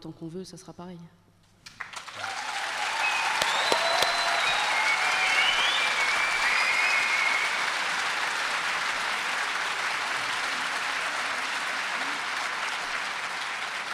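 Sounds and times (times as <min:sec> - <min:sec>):
speech: 0:00.0 - 0:01.3
audience applause: 0:01.7 - 0:13.9
whistles and cheers: 0:02.0 - 0:12.8.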